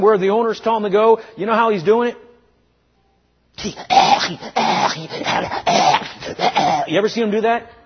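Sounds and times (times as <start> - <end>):
speech: 0.0 - 2.2, 3.6 - 7.8
man imitating a dog choking while straining on a leash: 3.6 - 7.0.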